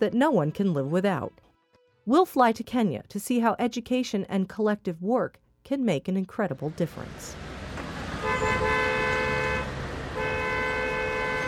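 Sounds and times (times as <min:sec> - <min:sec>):
speech: 0:00.0 - 0:01.4, 0:02.1 - 0:07.5
rumble of gridlocked street traffic of cars, bicycles and people in Nairobi, Kenya: 0:06.6 - 0:11.4
car horns honking in gridlocked street traffic in Nairobi, Kenya: 0:07.8 - 0:11.4.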